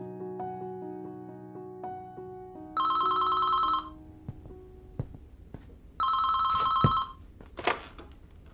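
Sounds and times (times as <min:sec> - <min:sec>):
telephone ringing: 0:02.8 - 0:04.0, 0:06.0 - 0:07.2.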